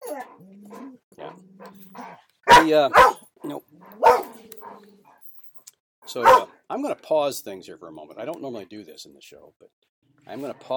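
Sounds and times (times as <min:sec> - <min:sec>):
dog whining and yipping: 0:00.0 - 0:02.2, 0:03.8 - 0:05.3
dog barking: 0:00.1 - 0:04.9, 0:06.2 - 0:06.6
speech: 0:02.6 - 0:03.2, 0:06.1 - 0:09.7, 0:10.3 - 0:10.7.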